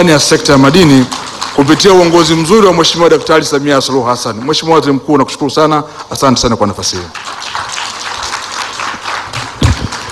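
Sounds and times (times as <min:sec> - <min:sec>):
speech: 0:00.0 - 0:07.4
audience applause at a government ceremony: 0:00.1 - 0:02.7, 0:07.1 - 0:10.1.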